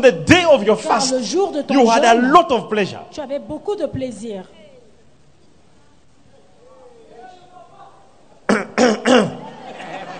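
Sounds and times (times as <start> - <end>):
speech: 0.0 - 4.6
room noise: 0.0 - 10.1
person coughing: 8.5 - 9.5
laughter: 9.3 - 10.1.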